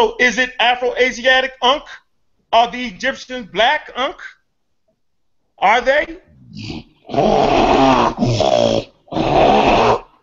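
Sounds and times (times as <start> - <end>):
speech: 0.0 - 4.4, 5.6 - 9.8
person snoring: 6.4 - 10.2.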